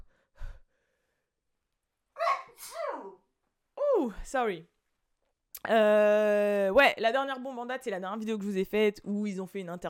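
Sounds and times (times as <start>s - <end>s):
person sneezing: 2.3s - 3.1s
speech: 4.0s - 4.7s, 5.6s - 9.8s.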